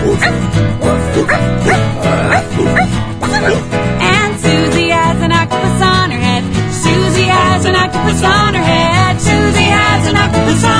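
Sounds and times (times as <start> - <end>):
voice imitating a dog barking with quick woofs: 0.0 - 3.6
bright musical backing: 0.0 - 10.7.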